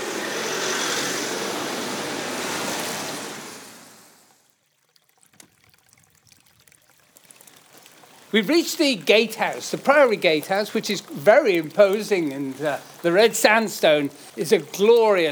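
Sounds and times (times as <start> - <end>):
vehicle rushing past with a whooshing roar: 0.0 - 4.3
faint ticks and rustles: 5.2 - 15.2
speech: 8.3 - 15.2.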